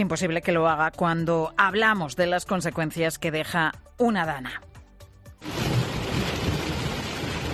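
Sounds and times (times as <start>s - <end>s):
speech: 0.0s - 4.7s
deep thunderous rumble: 5.4s - 7.5s
heavy downpour of rain: 5.4s - 7.5s.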